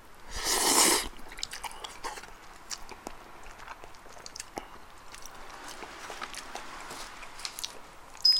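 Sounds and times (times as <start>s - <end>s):
slurping a bite of tantanmen noodles: 0.3s - 2.3s
chewing and crunching tantanmen noodles: 0.4s - 8.3s.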